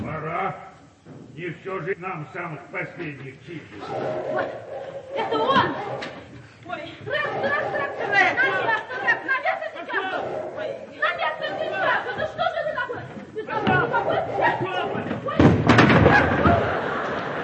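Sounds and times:
speech: 1.4s - 12.4s
several voices chattering and laughing: 3.4s - 17.4s
person tripping and landing on the floor with a thud: 15.1s - 16.7s.

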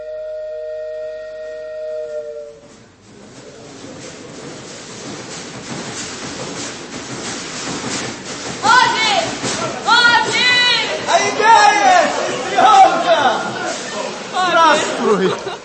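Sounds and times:
train horn blast at a railway station: 0.0s - 2.8s
train hissing rumble at a railway station: 1.6s - 15.6s
laughter: 9.2s - 15.6s.

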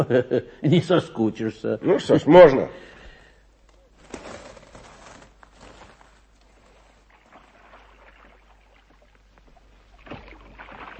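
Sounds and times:
speech: 0.0s - 3.0s
oars splashing as a small fishing boat is rowed on a lake: 5.9s - 10.9s.

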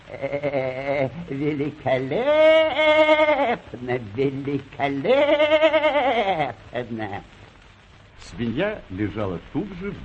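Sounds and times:
person imitating the bleating of an old goat: 0.0s - 3.8s, 4.8s - 7.3s
speech: 0.1s - 7.4s, 8.2s - 10.0s.

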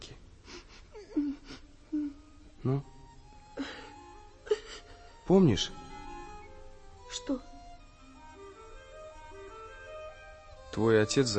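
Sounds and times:
woman quietly crying and whimpering: 0.4s - 2.5s, 3.4s - 5.2s
speech: 2.6s - 2.9s, 5.3s - 5.8s, 7.2s - 7.5s, 10.8s - 11.3s.

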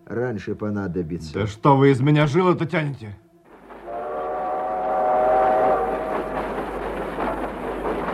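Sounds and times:
speech: 0.1s - 3.2s
rail cars rolling past with rumbling clatter: 3.5s - 8.1s
long train horn: 3.8s - 6.7s.

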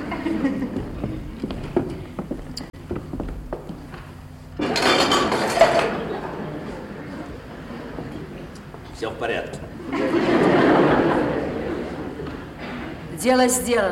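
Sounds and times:
laughter: 0.0s - 1.3s, 5.6s - 8.5s, 9.7s - 13.1s
dishes clinking and rattling as they are carried to the kitchen: 4.6s - 6.1s
speech: 13.3s - 13.9s.

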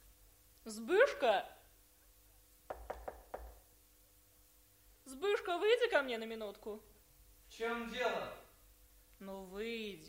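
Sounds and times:
speech: 0.7s - 1.6s, 5.2s - 6.9s, 7.5s - 8.4s, 9.2s - 10.0s
knocking on a wooden door: 2.7s - 3.6s.

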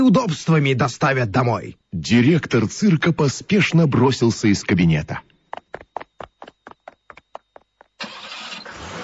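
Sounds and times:
speech: 0.0s - 5.3s
car starter cranking: 8.0s - 9.0s.

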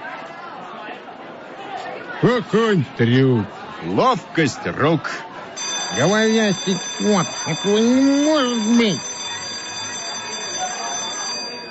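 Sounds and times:
speech: 2.2s - 5.3s, 5.9s - 9.1s
bell ringing as last call before a circus show: 5.6s - 11.7s.

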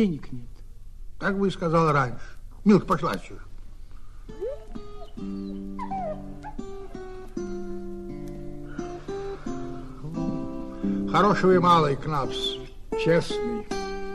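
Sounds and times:
speech: 0.0s - 0.5s, 1.2s - 3.5s, 11.1s - 13.5s
female dog whining and whimpering: 4.3s - 7.2s.

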